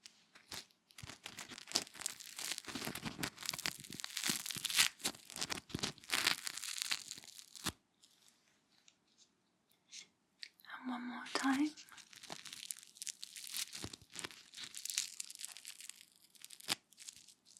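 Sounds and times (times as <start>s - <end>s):
fingers rubbing over crunchy toast: 0.4s - 7.8s, 11.8s - 17.5s.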